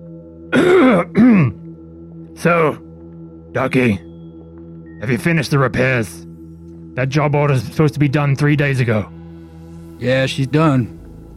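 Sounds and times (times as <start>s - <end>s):
wizened hunched-over man coughing loudly: 0.5s - 1.7s
speech: 2.4s - 2.8s, 3.6s - 4.1s, 5.0s - 6.3s, 7.0s - 9.2s, 10.0s - 11.0s.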